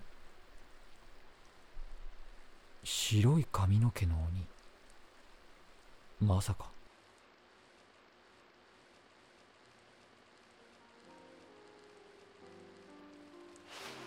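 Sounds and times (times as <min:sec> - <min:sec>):
heavy rain: 0:00.0 - 0:06.8, 0:13.6 - 0:14.0
speech: 0:02.8 - 0:04.6, 0:06.2 - 0:06.8.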